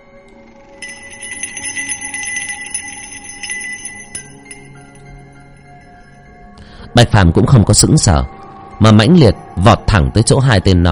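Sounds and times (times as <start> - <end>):
small spirit bell hanging at someone's waist jingling: 0.8 - 6.3
speech: 7.0 - 10.9.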